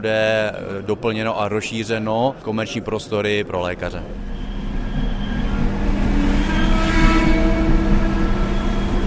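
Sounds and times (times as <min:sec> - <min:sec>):
speech: 0:00.0 - 0:04.3
outdoor traffic rumble in front of a railway station building: 0:01.9 - 0:09.0
vehicle passing: 0:04.1 - 0:09.0.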